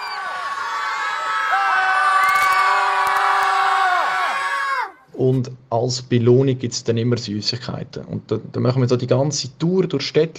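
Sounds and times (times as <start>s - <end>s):
group of children shouting loudly in front of shop: 0.0s - 5.1s
speech: 5.2s - 10.3s.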